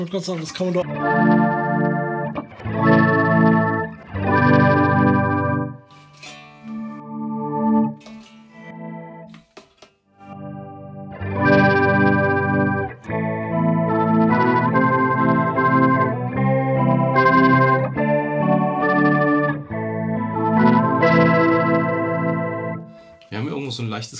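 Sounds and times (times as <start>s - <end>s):
speech: 0.0s - 1.9s
electric guitar through an octave effect with organ-like tone playing chords: 0.4s - 23.3s.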